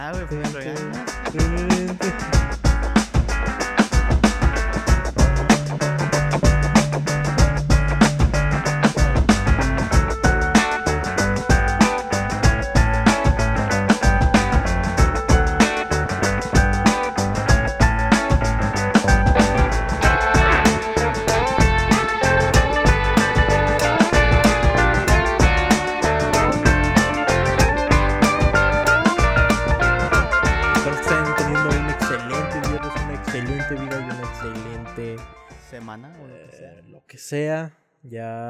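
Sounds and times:
speech: 0.0 - 2.6, 37.3 - 38.4
upbeat full-band music with punchy drums and bass: 0.0 - 35.8.

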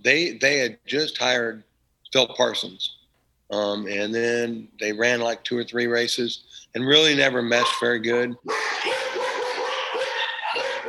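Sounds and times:
speech: 0.0 - 8.7
dogs barking: 7.5 - 10.8.

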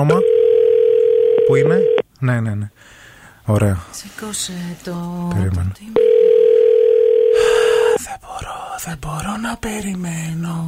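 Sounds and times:
speech: 0.0 - 0.4, 1.5 - 6.1, 8.2 - 10.6
telephone ringback tone: 0.0 - 2.0, 6.0 - 8.0
faint noise: 0.0 - 10.6.

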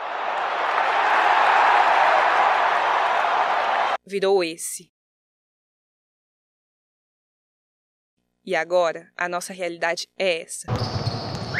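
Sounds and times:
big stadium crowd roaring and cheering: 0.0 - 4.0
speech: 4.1 - 5.0, 8.5 - 11.0.

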